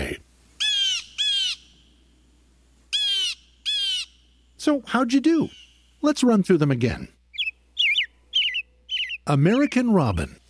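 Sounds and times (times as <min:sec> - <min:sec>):
Steller's jay giving harsh raspy calls: 0:00.0 - 0:01.9, 0:02.9 - 0:04.3, 0:07.3 - 0:09.8
speech: 0:04.6 - 0:07.2, 0:09.3 - 0:10.4.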